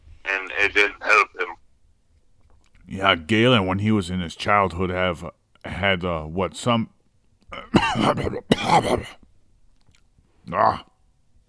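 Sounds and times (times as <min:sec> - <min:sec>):
speech: 0:00.6 - 0:01.3, 0:03.0 - 0:09.2, 0:10.5 - 0:10.9
throat clearing from grainy coffee caught in the throat: 0:07.5 - 0:09.3.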